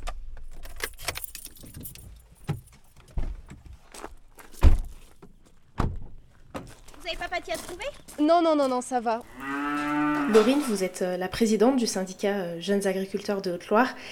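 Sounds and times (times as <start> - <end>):
keys jangling: 0.5 - 3.1
footsteps crunching: 3.6 - 11.0
car doors thunking shut: 4.6 - 4.9
speech: 7.4 - 9.6, 10.3 - 14.1.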